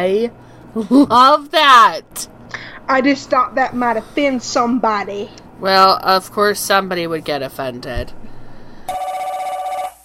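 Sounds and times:
speech: 0.0s - 8.3s
telephone ringing: 8.9s - 10.0s.

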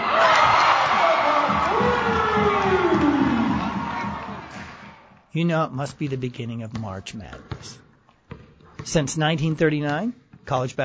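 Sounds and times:
crowd roaring at a college basketball game: 0.0s - 5.1s
speech: 5.3s - 7.8s, 8.8s - 10.8s.

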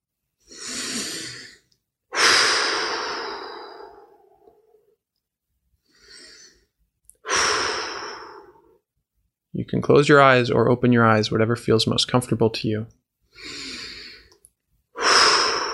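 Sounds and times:
deep breathing during a guided relaxation exercise: 0.4s - 4.9s, 5.8s - 8.8s, 13.3s - 15.7s
speech: 9.7s - 13.6s.

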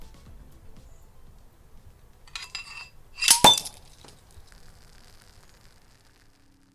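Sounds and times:
champagne bottle neck snapping off when sabered: 0.6s - 6.7s
metallic clinks: 0.8s - 5.7s
blade scraping along champagne bottle glass: 2.2s - 6.7s.

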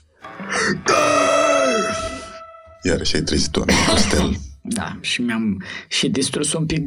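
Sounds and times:
person yawning in a guttural death-metal growl: 0.5s - 2.4s
speech: 2.8s - 6.8s
laughter: 3.6s - 4.4s.

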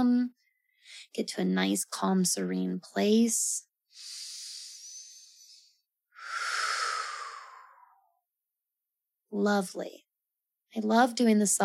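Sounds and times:
speech: 0.0s - 4.2s, 9.3s - 10.0s, 10.8s - 11.6s
deep cleansing breaths with long exhales: 3.9s - 8.1s.

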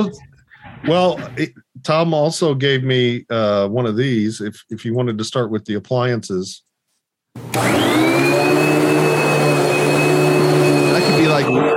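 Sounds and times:
speech: 0.0s - 6.7s, 7.4s - 8.5s
household vacuum cleaner running: 7.4s - 11.7s.

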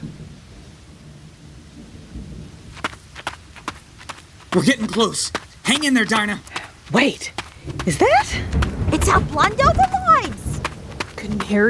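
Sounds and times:
crackling thunder claps: 0.0s - 4.0s, 7.6s - 11.6s
thunder rumbling in a storm: 0.0s - 6.1s, 6.8s - 11.6s
storm hiss: 0.0s - 11.6s
speech: 4.6s - 10.3s, 11.2s - 11.6s.

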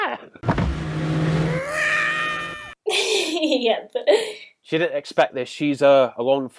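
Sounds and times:
car speeding off: 0.4s - 2.6s
speech: 3.6s - 6.5s.

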